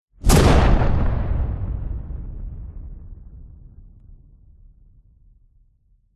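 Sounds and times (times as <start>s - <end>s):
punchy medium large powerful explosion: 0.2s - 5.7s.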